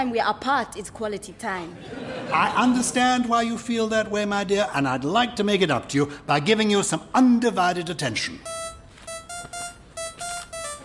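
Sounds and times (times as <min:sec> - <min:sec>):
speech: 0:00.0 - 0:08.6
laughter: 0:01.8 - 0:03.0
mobile phone ringing with a bright electronic ringtone: 0:08.4 - 0:10.8.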